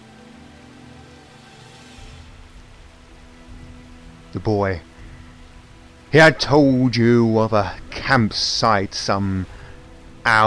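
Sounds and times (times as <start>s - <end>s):
steady rain falling: 0.0s - 10.4s
low rumble: 2.0s - 10.4s
speech: 4.3s - 4.9s, 6.1s - 9.6s, 10.3s - 10.4s.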